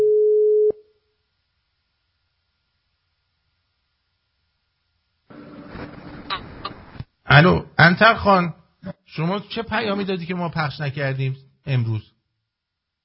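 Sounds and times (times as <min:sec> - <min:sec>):
telephone line tone beeping as a call is dialed: 0:00.0 - 0:00.7
crackly rustling telephone line noise: 0:05.3 - 0:07.2
speech: 0:07.4 - 0:12.1.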